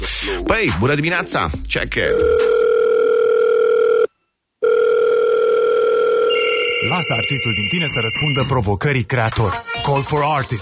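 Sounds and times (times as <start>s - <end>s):
speech: 0.4s - 2.6s, 6.8s - 10.6s
telephone ringback tone before call: 2.1s - 8.5s.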